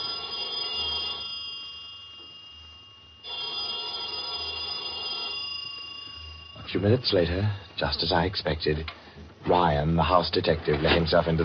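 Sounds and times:
telephone ringing with a bright buzzing bell tone: 0:00.0 - 0:08.8
speech: 0:06.7 - 0:11.4.

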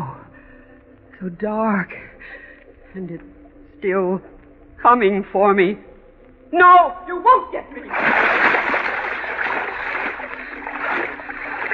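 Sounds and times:
speech: 0:01.2 - 0:05.9, 0:06.5 - 0:08.6
river water splashing as someone swims in the dark: 0:07.8 - 0:11.7.

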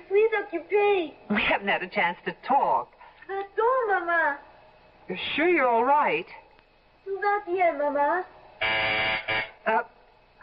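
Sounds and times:
speech: 0:00.4 - 0:04.5, 0:05.1 - 0:06.4, 0:07.1 - 0:09.9
intercom phone buzzer ringing from downstairs: 0:08.6 - 0:09.9.

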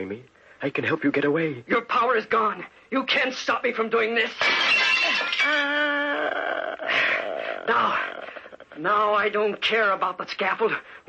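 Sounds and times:
speech: 0:00.0 - 0:08.2, 0:08.8 - 0:11.0
mirror being smashed: 0:04.2 - 0:05.8.

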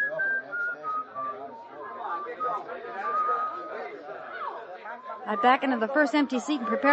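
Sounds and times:
person whistling a short tune: 0:00.0 - 0:03.8
murmur of chatter from several people: 0:00.0 - 0:06.9
speech: 0:05.3 - 0:06.9.

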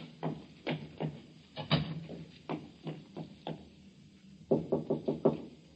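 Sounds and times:
knocking on a door: 0:00.2 - 0:03.7, 0:04.5 - 0:05.6.

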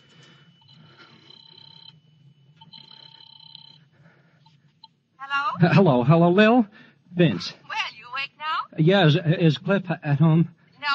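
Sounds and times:
telephone ringing in a phone booth in a drugstore: 0:00.0 - 0:05.6
low hum: 0:00.0 - 0:10.9
speech: 0:05.2 - 0:07.6, 0:08.8 - 0:10.6.

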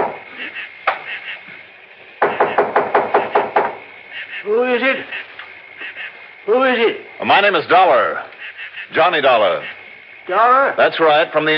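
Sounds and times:
faint steady hum: 0:00.0 - 0:11.5
firm knocks on a wooden door: 0:02.2 - 0:03.8
speech: 0:04.4 - 0:05.3, 0:06.5 - 0:08.3, 0:08.9 - 0:11.5.

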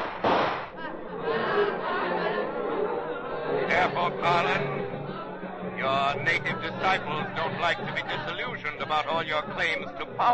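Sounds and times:
single loud gunshot: 0:00.0 - 0:00.8
noisy crowd murmuring and clamoring: 0:00.7 - 0:10.3
laughter: 0:00.8 - 0:10.3
speech: 0:03.9 - 0:04.8, 0:05.8 - 0:10.3.

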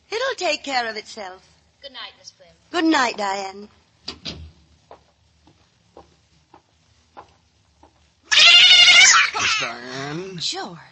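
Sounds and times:
speech: 0:00.4 - 0:04.2, 0:09.4 - 0:10.9
cat meowing: 0:08.3 - 0:09.7
loud raspy cry: 0:08.3 - 0:10.0.

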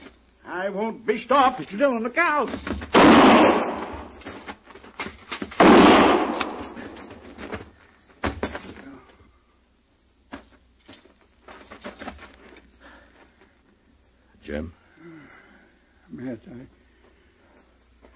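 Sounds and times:
speech: 0:00.5 - 0:03.5
knocks and thuds: 0:02.5 - 0:08.9
shotgun blasts during an armed standoff: 0:02.9 - 0:04.2, 0:05.6 - 0:07.1.

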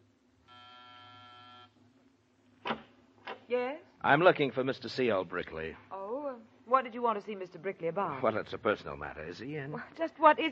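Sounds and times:
door buzzer in a building corridor pressed, harsh electric drone: 0:00.4 - 0:01.8
speech: 0:03.5 - 0:05.9, 0:06.8 - 0:10.5.

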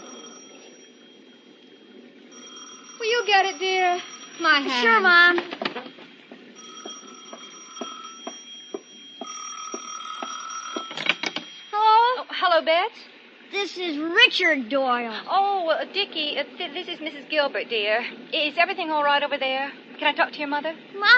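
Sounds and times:
telephone bell ringing: 0:00.0 - 0:12.3
speech: 0:03.2 - 0:06.0, 0:12.6 - 0:21.1.

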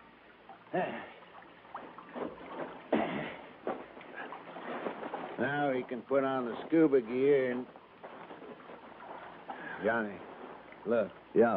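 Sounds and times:
water sloshing around a boat: 0:00.0 - 0:11.5
speech: 0:00.7 - 0:01.2, 0:05.4 - 0:07.8, 0:09.8 - 0:11.5
boat hull scraping and grinding up onto sand: 0:03.6 - 0:11.1.

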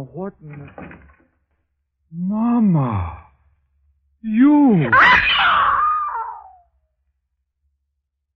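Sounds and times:
speech: 0:00.0 - 0:01.2, 0:02.1 - 0:03.2, 0:04.2 - 0:05.6
woman screaming: 0:04.9 - 0:06.6.

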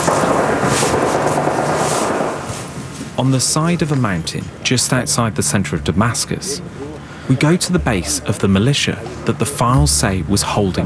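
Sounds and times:
gunfire: 0:00.0 - 0:02.9
outdoor noise: 0:00.0 - 0:10.8
speech: 0:03.2 - 0:10.8.

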